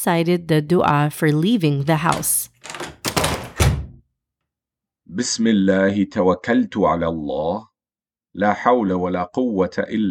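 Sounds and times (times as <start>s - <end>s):
speech: 0.0s - 2.5s, 5.1s - 7.7s, 8.4s - 10.1s
front door of a house closing: 2.0s - 4.0s.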